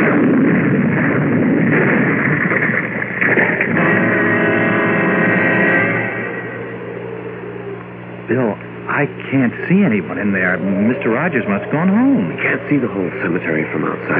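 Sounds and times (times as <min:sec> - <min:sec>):
loud sustained explosion with crackling debris: 0:00.0 - 0:06.5
speech: 0:09.0 - 0:14.1.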